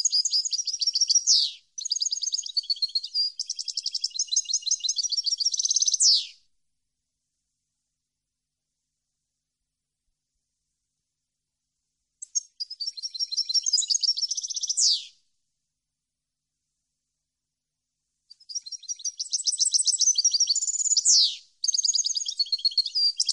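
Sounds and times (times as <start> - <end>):
European goldfinch song: 0.0 - 6.4, 12.2 - 15.2, 18.3 - 23.3.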